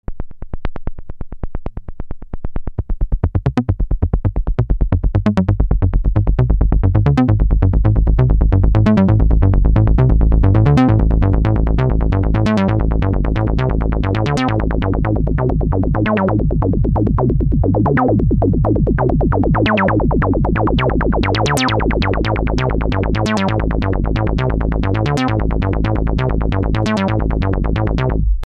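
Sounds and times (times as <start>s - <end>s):
SH101 synthesizer envelope filter sweep: 3.2s - 28.4s.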